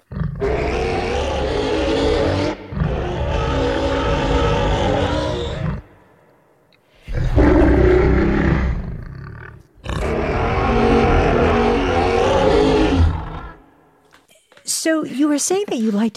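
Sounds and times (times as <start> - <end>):
ice beast roars made from processed pig squeal: 0.0 - 5.9, 7.0 - 13.8
speech: 15.4 - 16.1.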